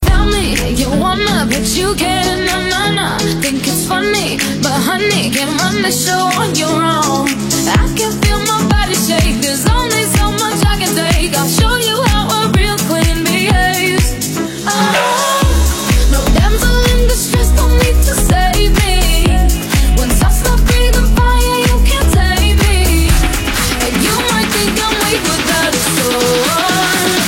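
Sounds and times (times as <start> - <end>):
slap house summer bass: 0.0 - 27.2.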